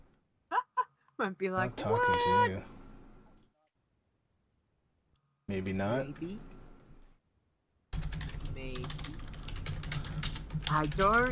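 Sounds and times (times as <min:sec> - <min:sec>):
low hum: 0:00.0 - 0:11.2
speech: 0:01.2 - 0:02.8, 0:05.5 - 0:06.5, 0:08.6 - 0:09.3, 0:10.6 - 0:11.2
computer keyboard typing: 0:08.0 - 0:11.2.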